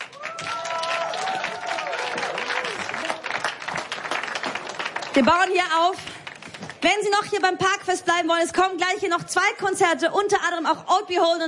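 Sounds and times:
cheers: 0:00.0 - 0:03.9
crowd at a park festival applauding: 0:00.0 - 0:06.6
speech: 0:05.2 - 0:06.1, 0:06.8 - 0:11.4.

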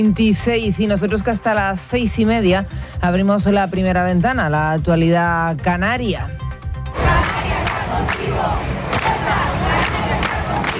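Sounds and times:
speech: 0:00.0 - 0:06.5
protest crowd chanting slogans outdoors: 0:06.9 - 0:10.7.

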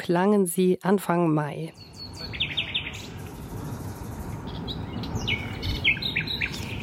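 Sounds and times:
speech: 0:00.0 - 0:02.0
common nightingale singing in a city neighbourhood: 0:01.6 - 0:06.8
low rumble of urban traffic: 0:01.7 - 0:06.8.

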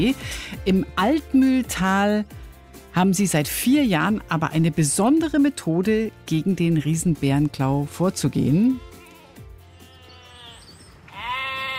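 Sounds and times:
speech: 0:00.0 - 0:08.9
herd of sheep and goats bleating: 0:08.4 - 0:11.7.

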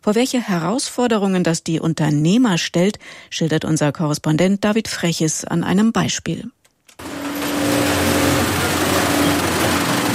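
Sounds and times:
speech: 0:00.0 - 0:07.1
sewing machines stitching protective workwear in a factory: 0:07.0 - 0:10.1.

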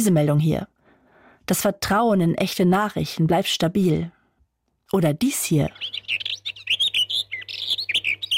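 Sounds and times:
speech: 0:00.0 - 0:00.8, 0:01.5 - 0:04.2, 0:04.9 - 0:06.3
birdsong chirps and trills: 0:05.6 - 0:08.3.

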